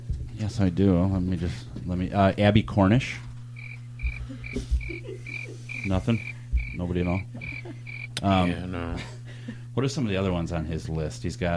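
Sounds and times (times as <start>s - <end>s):
speech: 0.4s - 3.3s, 4.5s - 7.6s, 8.2s - 9.2s, 9.8s - 11.5s
cricket chirping in night-time ambience: 3.6s - 8.2s
low throaty croaks: 3.6s - 8.2s
laughter: 4.1s - 6.3s, 6.9s - 9.7s.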